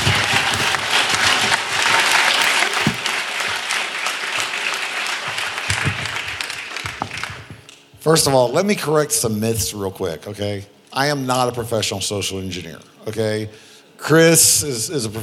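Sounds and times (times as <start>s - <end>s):
audience applause welcoming a speaker: 0.0s - 7.6s
louder individual claps: 0.0s - 7.8s
speech: 8.1s - 15.2s.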